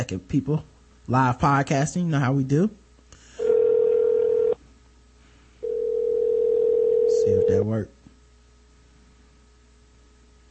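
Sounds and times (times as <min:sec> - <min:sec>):
speech: 0:00.0 - 0:02.8, 0:07.3 - 0:08.0
phone outgoing call tone while calling back: 0:03.4 - 0:04.6, 0:05.6 - 0:07.7.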